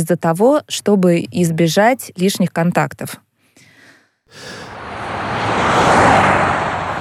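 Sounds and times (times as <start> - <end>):
speech: 0.0 - 3.3, 4.3 - 4.7
car speeding past: 4.6 - 6.9.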